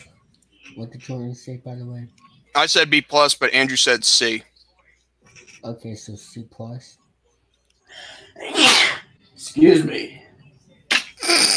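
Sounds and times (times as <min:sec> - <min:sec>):
speech: 0:00.8 - 0:04.5, 0:05.6 - 0:07.0, 0:09.4 - 0:10.2
sneeze: 0:08.4 - 0:09.1, 0:10.9 - 0:11.5.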